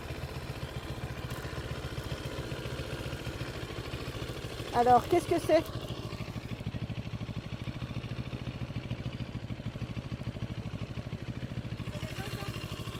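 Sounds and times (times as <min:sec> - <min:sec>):
CFMoto 700 twin-cylinder motorcycle engine idling: 0:00.0 - 0:12.9
speech: 0:04.8 - 0:05.9.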